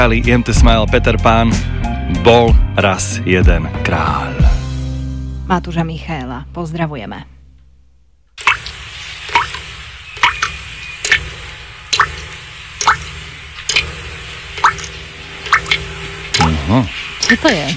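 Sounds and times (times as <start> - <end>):
speech: 0.0 - 4.6, 5.5 - 7.3, 16.7 - 17.7
water dripping: 8.4 - 17.7.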